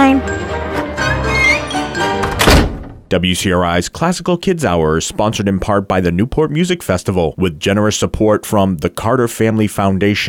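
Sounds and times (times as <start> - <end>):
soft orchestral music: 0.0 - 2.3
heavy concert hall doors closing with a thunk: 1.0 - 3.1
speech: 3.1 - 10.2.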